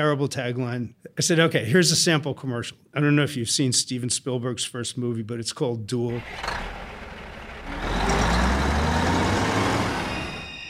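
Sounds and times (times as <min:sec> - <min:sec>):
speech: 0:00.0 - 0:06.8
semi-trailer truck diesel engine roaring and accelerating: 0:06.1 - 0:10.6.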